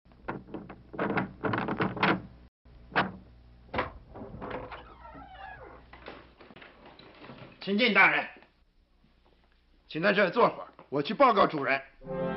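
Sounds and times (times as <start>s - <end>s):
door thuds: 0.2s - 4.8s
door creaking as it swings open: 0.2s - 7.7s
speech: 7.6s - 8.3s, 9.9s - 12.2s.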